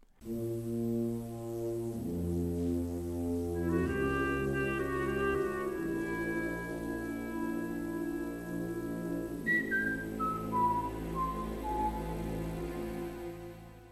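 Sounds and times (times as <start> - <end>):
sustained orchestral chords of a film score: 0.2 - 13.9
group of priests whistling a slow film theme melody: 3.6 - 13.2.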